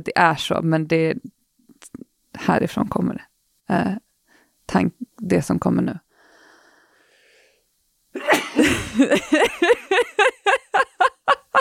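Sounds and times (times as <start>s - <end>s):
speech: 0.0s - 1.4s, 2.4s - 4.0s, 4.7s - 6.0s, 8.2s - 10.9s
person sneezing: 8.2s - 9.0s
laughter: 8.6s - 11.5s.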